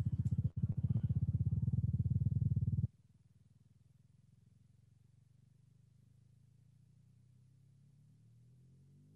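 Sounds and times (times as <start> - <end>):
sonified gravitational-wave signal from a moderately eccentric binary orbit: 0.0 - 2.9.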